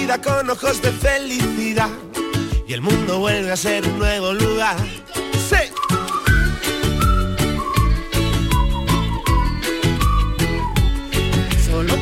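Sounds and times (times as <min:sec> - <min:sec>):
upbeat pop track with driving beat and full band backing: 0:00.0 - 0:12.0
speech: 0:00.1 - 0:05.6
bright whistled melody in a pop song: 0:05.6 - 0:12.0.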